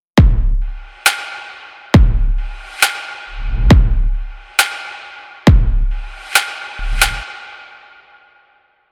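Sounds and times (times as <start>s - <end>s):
kick drum: 0.2s - 1.1s, 1.9s - 2.7s, 3.3s - 4.5s, 5.5s - 6.2s, 6.8s - 7.2s
snare drum: 2.0s - 7.4s.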